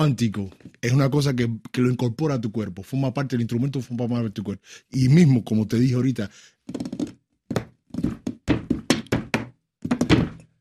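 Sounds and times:
speech: 0.0s - 7.0s
rhythmic knocking on a wooden table: 6.8s - 10.5s.

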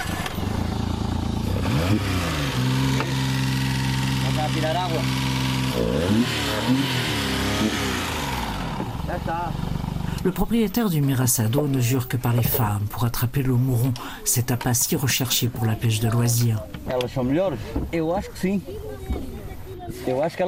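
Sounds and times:
stalled small boat motor cranked and revved: 0.0s - 10.3s
speech: 1.9s - 2.7s, 4.5s - 8.1s, 9.1s - 19.2s, 20.0s - 20.4s.

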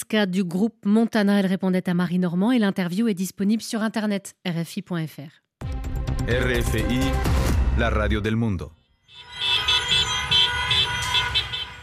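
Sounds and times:
speech: 0.1s - 5.4s, 6.2s - 8.8s
car horns honking at a street protest in the Argentine capital: 9.0s - 11.8s.

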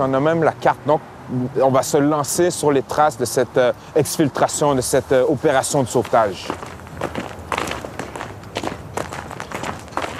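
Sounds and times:
speech: 0.0s - 7.2s
footsteps of several people walking with crunching steps: 5.4s - 10.1s.

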